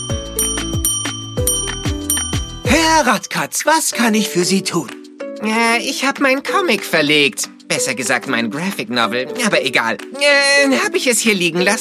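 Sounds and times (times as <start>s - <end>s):
bell being pressed: 0.0s - 4.7s
speech: 3.0s - 11.8s.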